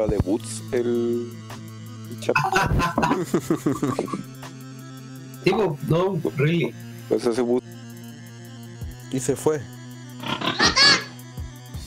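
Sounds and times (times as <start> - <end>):
speech: 0.0 - 4.4, 5.4 - 7.7, 9.1 - 9.8
pig grunting and oinking: 2.4 - 3.2, 10.2 - 11.2
laughter: 2.4 - 4.3, 10.3 - 11.2.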